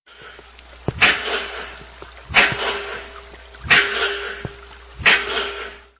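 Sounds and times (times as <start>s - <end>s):
pile driver pounding by the Salish Sea: 0.9s - 1.7s, 2.3s - 5.9s.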